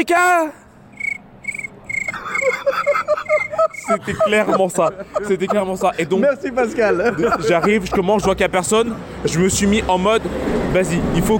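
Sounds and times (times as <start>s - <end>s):
speech: 0.0s - 0.6s, 2.4s - 11.3s
busier layer of insect chirping: 0.9s - 5.0s
crickets chirping in evenly spaced pulses: 0.9s - 6.0s
laughter: 2.0s - 8.9s.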